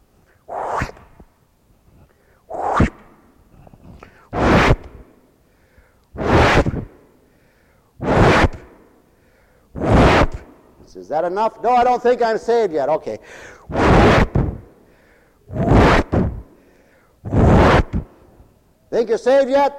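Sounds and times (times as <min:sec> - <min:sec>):
whip lashing swishes through the air: 0:00.5 - 0:01.2, 0:02.5 - 0:03.2, 0:04.3 - 0:05.1, 0:06.2 - 0:06.9, 0:08.0 - 0:08.8, 0:09.8 - 0:10.5, 0:13.7 - 0:14.6, 0:15.6 - 0:16.4, 0:17.3 - 0:18.1
speech: 0:10.9 - 0:14.2, 0:19.0 - 0:19.7.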